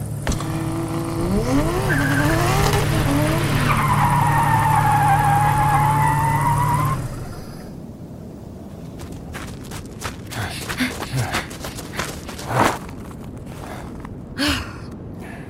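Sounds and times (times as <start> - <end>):
car engine rumble: 0.0 - 15.4
car tires screeching while braking hard: 0.3 - 7.8.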